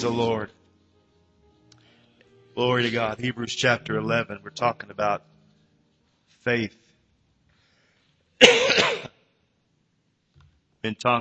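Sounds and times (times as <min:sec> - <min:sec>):
speech: 0:00.0 - 0:00.6, 0:02.6 - 0:05.3, 0:06.4 - 0:06.8, 0:08.4 - 0:09.0, 0:10.8 - 0:11.1
single harsh cough: 0:08.4 - 0:09.2.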